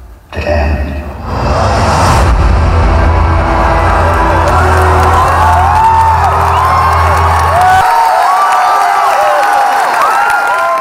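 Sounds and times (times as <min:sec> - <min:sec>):
deep rumble: 0:00.3 - 0:07.7
large crowd roaring and cheering at a trailer: 0:01.2 - 0:10.7.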